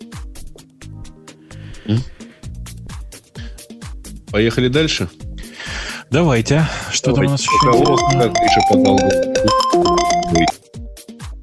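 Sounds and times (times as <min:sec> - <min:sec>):
speech: 0:01.8 - 0:02.2, 0:04.3 - 0:05.2, 0:06.1 - 0:10.6
mobile phone ringing with bright electronic melody: 0:07.3 - 0:10.6.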